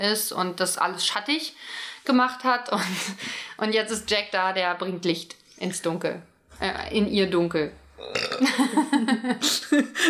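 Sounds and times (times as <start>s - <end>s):
speech: 0.0s - 10.0s
loud gravelly burp: 8.0s - 8.7s.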